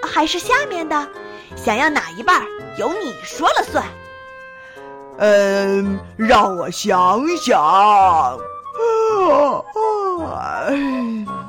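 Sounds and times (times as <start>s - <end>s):
speech: 0.2s - 4.0s, 5.2s - 11.4s
voice imitating a big bear's long sleepy yawn: 8.8s - 11.4s.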